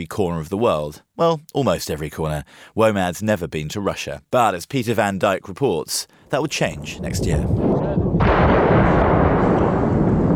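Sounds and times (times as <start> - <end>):
speech: 0.0 - 8.8
artillery fire during a bombardment of a city: 7.6 - 10.3
sharp crack: 7.8 - 10.3.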